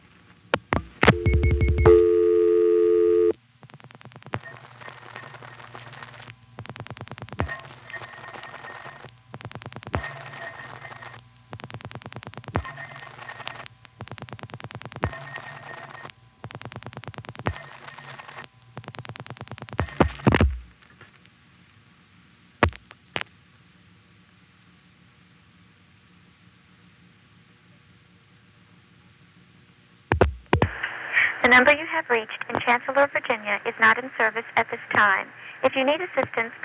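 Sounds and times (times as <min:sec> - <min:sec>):
faint telephone line hum: 0:00.0 - 0:36.6
steady telephone tone: 0:01.0 - 0:03.4
speech: 0:31.5 - 0:36.6.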